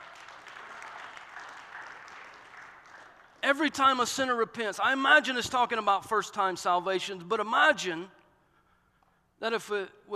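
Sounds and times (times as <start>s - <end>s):
crowd applauding: 0.0s - 3.4s
speech: 3.5s - 8.2s, 9.4s - 10.1s.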